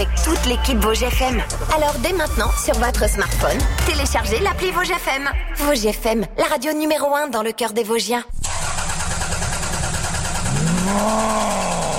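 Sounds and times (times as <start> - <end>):
speech: 0.0 - 8.4, 10.9 - 11.6
rattly car engine idling and revving: 8.3 - 11.9.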